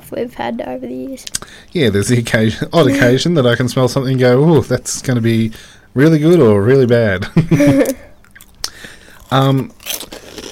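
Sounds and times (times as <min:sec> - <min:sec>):
speech: 0:00.1 - 0:08.1, 0:09.3 - 0:10.2
brief voiced hum: 0:02.8 - 0:03.2
laughter: 0:02.8 - 0:03.3, 0:07.2 - 0:08.1
crunchy snack being chewed: 0:08.2 - 0:10.4
sharp crackling bites: 0:08.2 - 0:10.4.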